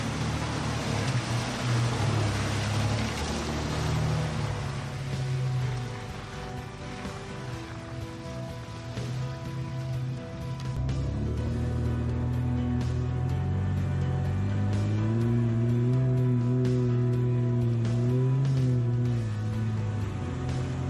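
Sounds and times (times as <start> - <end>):
truck engine revving and straining through a water crossing: 0.0 - 6.5, 10.8 - 20.8
water splashing and rushing around a truck: 0.0 - 20.8.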